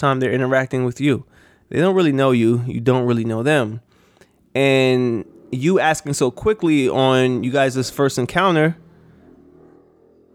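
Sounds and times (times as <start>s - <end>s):
speech: 0.0s - 3.9s, 4.5s - 8.8s
motorcycles passing in a street in Brooklyn New York: 4.6s - 10.3s.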